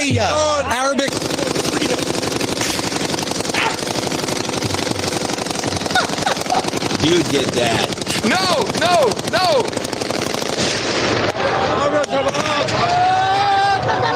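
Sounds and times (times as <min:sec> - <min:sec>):
speech: 0:00.0 - 0:01.1, 0:07.0 - 0:09.9
loud, dense crowd: 0:00.0 - 0:14.1
sustained bursts of celebratory machine gun fire: 0:01.0 - 0:11.6
people shouting: 0:03.5 - 0:03.9, 0:08.2 - 0:09.8, 0:11.2 - 0:14.1
laughter: 0:05.6 - 0:09.6, 0:11.3 - 0:14.1.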